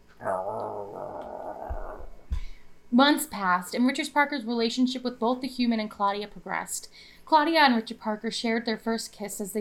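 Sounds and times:
mastiff dog growling: 0.2s - 2.3s
speech: 2.9s - 9.5s.

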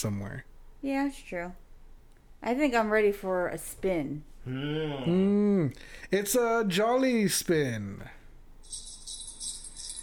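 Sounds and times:
speech: 0.0s - 1.6s, 2.4s - 8.2s
coins tumbling down stairs: 8.6s - 10.0s.

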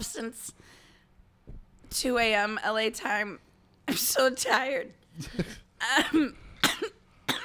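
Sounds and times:
speech: 0.1s - 0.8s, 1.9s - 6.4s
harsh coughing from one person: 5.3s - 7.4s.

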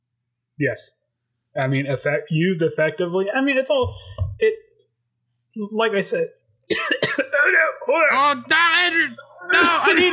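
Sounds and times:
speech: 0.6s - 1.0s, 1.6s - 4.6s, 5.6s - 6.9s, 7.5s - 10.1s
person coughing: 6.7s - 7.6s.

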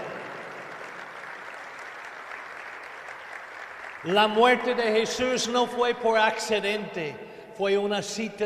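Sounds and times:
audience applauding: 0.0s - 5.0s
speech: 4.0s - 8.4s.

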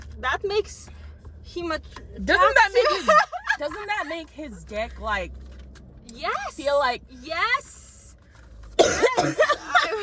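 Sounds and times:
speech: 0.2s - 5.4s, 6.1s - 7.8s, 8.9s - 10.0s
person coughing harshly: 8.8s - 10.0s.

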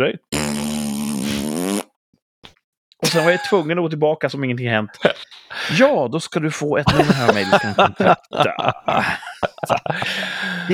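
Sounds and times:
speech: 0.0s - 0.2s, 3.1s - 10.7s
loud sustained buzzy fart: 0.3s - 2.0s
laughter: 6.9s - 10.7s.

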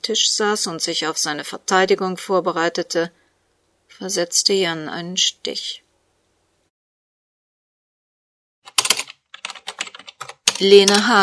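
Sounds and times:
speech: 0.0s - 3.2s, 3.9s - 5.8s, 10.6s - 11.2s
woman typing on a computer keyboard: 8.7s - 11.2s.

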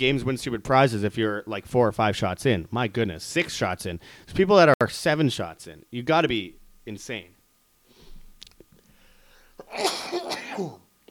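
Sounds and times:
speech: 0.0s - 7.4s, 9.7s - 10.8s
faint sniffs: 7.9s - 8.3s
loud breathy sneeze from allergies: 9.6s - 10.9s.

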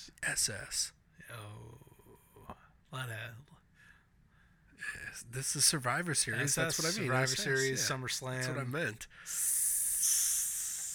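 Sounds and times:
speech: 0.0s - 1.9s, 2.9s - 3.6s, 4.8s - 9.6s
person hissing like a snake: 9.3s - 10.9s.

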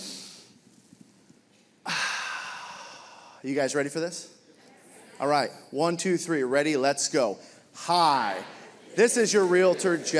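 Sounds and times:
group of people drawing a big deep breath in together: 1.9s - 3.4s
speech: 3.4s - 4.4s, 5.2s - 10.1s.

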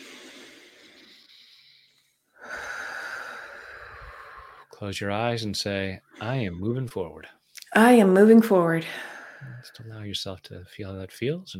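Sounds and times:
person taking a deep breath during a guided affirmation exercise: 0.0s - 4.8s, 8.9s - 9.9s
speech: 4.8s - 11.5s.

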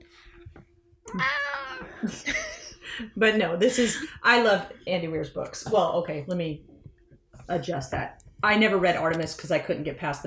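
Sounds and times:
speech: 1.1s - 1.4s, 2.0s - 6.7s, 7.5s - 10.2s
cat meowing: 1.1s - 2.1s.

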